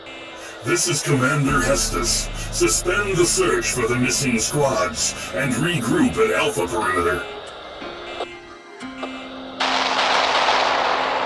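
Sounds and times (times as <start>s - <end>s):
steady low drone: 0.0s - 8.0s
speech: 0.6s - 7.3s
heavy gunfire in a combat scene: 9.6s - 11.2s.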